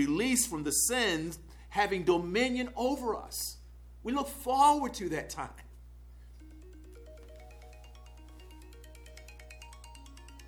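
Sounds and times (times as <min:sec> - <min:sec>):
speech: 0:00.0 - 0:05.7
mobile phone ringtone with bright stepping electronic melody: 0:06.4 - 0:10.4.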